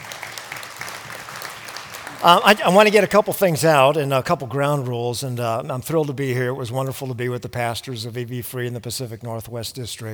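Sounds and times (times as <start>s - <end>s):
church congregation clapping: 0.0s - 3.8s
speech: 2.2s - 10.1s.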